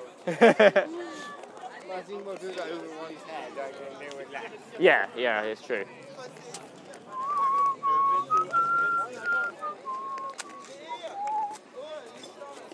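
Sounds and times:
faint noise: 0.0 - 12.7
laughter: 0.2 - 1.4
speech: 0.2 - 1.4, 2.0 - 6.8
person whistling a Scottish tune: 7.2 - 11.6.

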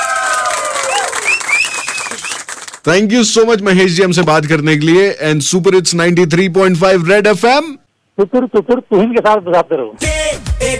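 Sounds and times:
loud applause and cheering from a crowd: 0.0 - 2.8
high whistles: 0.9 - 2.5
speech: 2.8 - 10.7.

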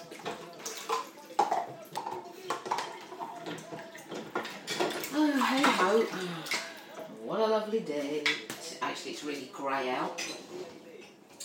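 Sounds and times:
ceramic cup clattering against a sink basin while being washed: 0.0 - 6.6
running water splashing in a sink: 0.0 - 7.1
speech: 5.9 - 6.6, 7.4 - 10.8.

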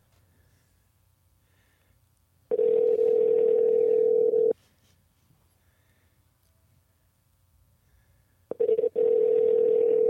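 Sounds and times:
outgoing telephone call ringback tone: 2.5 - 4.6, 8.5 - 10.0.

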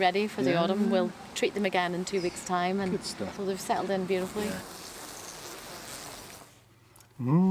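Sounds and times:
speech: 0.0 - 4.8, 7.2 - 7.5
honeybees buzzing around a hive: 0.4 - 6.5
bee droning at the microphone trying to sting it: 3.4 - 6.5.

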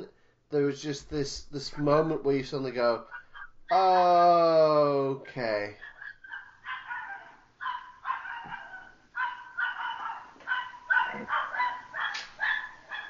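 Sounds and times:
speech: 0.5 - 5.9
dog barking and yowling outside: 3.0 - 4.0, 5.8 - 13.0.

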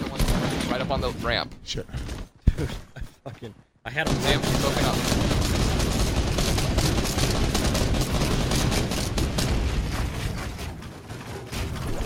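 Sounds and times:
speech: 0.8 - 5.6
rapid gunfire from a video game shootout: 4.0 - 12.0.

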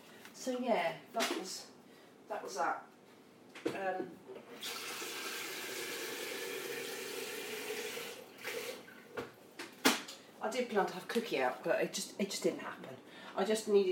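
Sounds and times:
speech: 0.4 - 1.7, 2.3 - 2.9, 3.6 - 5.1, 10.4 - 13.9
tap water running into a kettle: 4.6 - 9.0.

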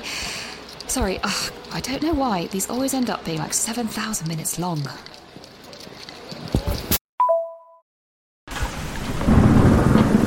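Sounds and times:
speech: 0.9 - 5.2
short electronic beep: 7.2 - 7.8
heavy rain pouring down in a storm: 8.5 - 10.2
thunder cracking through a storm: 8.5 - 10.2.

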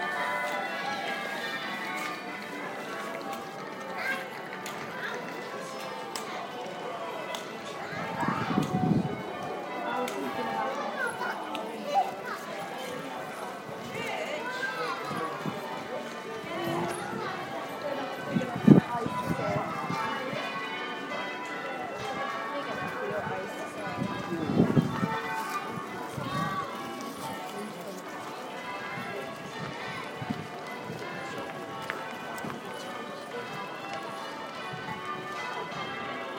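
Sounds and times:
church bells in Chesterfield: 0.0 - 36.3
market ambience in Chesterfield: 0.0 - 36.3.

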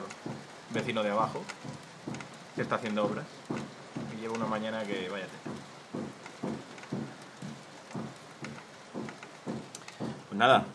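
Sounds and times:
soft evenly spaced thuds: 0.0 - 10.3
steady rain hissing: 0.0 - 10.7
speech: 0.7 - 1.8, 2.6 - 3.6, 4.2 - 5.5, 10.4 - 10.7.

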